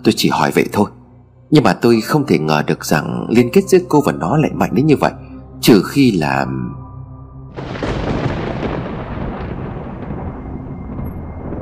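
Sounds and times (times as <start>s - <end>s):
speech: 0.0s - 6.8s
dry thunderclap: 7.5s - 11.6s.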